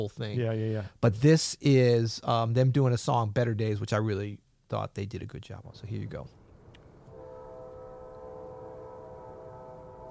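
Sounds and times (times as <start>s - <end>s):
speech: 0.0s - 6.4s
train horn holding a steady sustained chord in Memphis: 7.1s - 10.0s.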